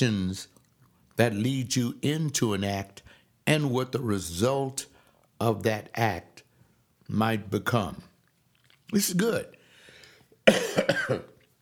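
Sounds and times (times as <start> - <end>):
speech: 0.0 - 0.6, 1.2 - 6.4, 7.1 - 8.1, 8.9 - 9.6, 10.5 - 11.3
person coughing: 10.4 - 11.4.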